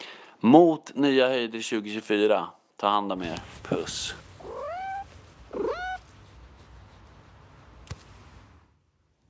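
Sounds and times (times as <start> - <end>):
speech: 0.4 - 4.2
male pet cat meowing: 4.4 - 6.1.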